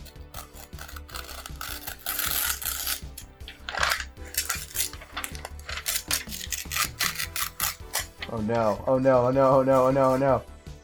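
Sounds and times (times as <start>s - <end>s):
paper character sheet being torn: 0.0s - 8.4s
speech: 8.3s - 10.5s.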